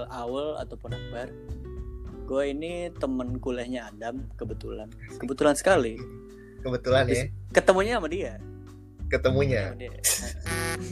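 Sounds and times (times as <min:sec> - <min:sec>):
speech: 0:00.0 - 0:01.7, 0:02.3 - 0:08.5, 0:09.1 - 0:10.9
mobile phone buzzing with a notification: 0:10.4 - 0:10.9.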